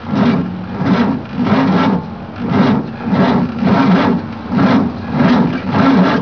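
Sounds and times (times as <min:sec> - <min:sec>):
grinding: 0:00.0 - 0:06.2.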